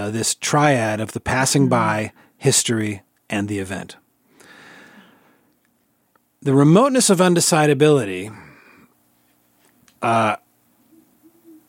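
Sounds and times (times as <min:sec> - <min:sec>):
speech: 0:00.0 - 0:04.0, 0:06.4 - 0:08.5, 0:10.0 - 0:10.4
faint low hum: 0:00.0 - 0:11.6
owl hooting outside a yurt: 0:10.8 - 0:11.6.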